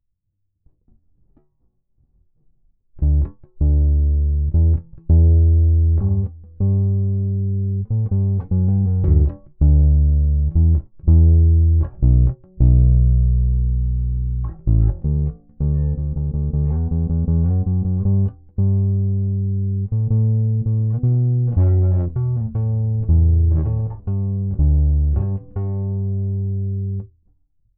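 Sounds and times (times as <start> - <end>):
bass with chorus effect: 3.0 - 27.1.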